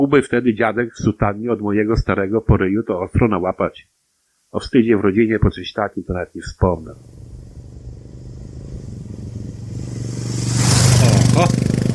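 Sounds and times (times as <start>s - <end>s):
speech: 0.0s - 7.2s, 11.4s - 11.8s
motorcycle ridden fast to a shop speeding past: 7.0s - 11.9s.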